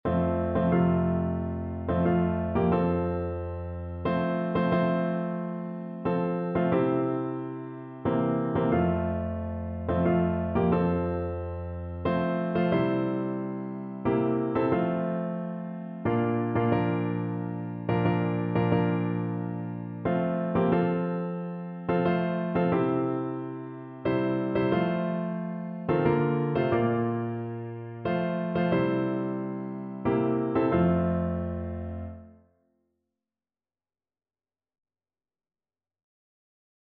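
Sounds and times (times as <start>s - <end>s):
joyful piano music: 0.0s - 32.4s.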